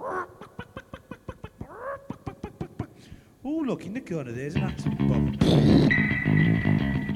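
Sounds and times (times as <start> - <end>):
chickens squawking and clucking while chased by dog: 0.0 - 2.6
speech: 3.4 - 6.8.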